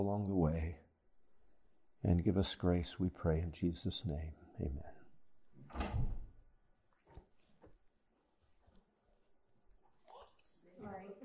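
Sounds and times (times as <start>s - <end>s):
speech: 0.0s - 0.8s, 2.0s - 5.0s
door opening with knock and rattle: 5.6s - 6.4s.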